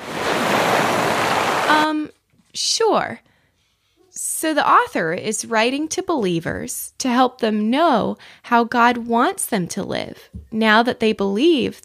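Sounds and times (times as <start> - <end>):
crashing ocean waves: 0.0 - 1.9
speech: 1.7 - 3.3, 4.2 - 11.8.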